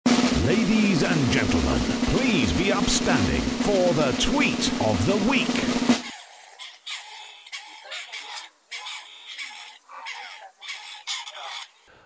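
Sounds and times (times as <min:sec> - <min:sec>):
speech: 0:01.0 - 0:05.9
partridge giving harsh grating rasps: 0:04.5 - 0:12.0.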